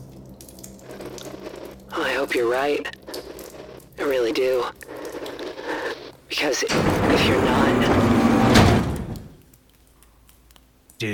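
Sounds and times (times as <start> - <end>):
speech: 2.3 - 3.2, 4.0 - 4.9, 6.3 - 8.2, 11.0 - 11.1
heavy pressure door sliding open: 6.7 - 9.4.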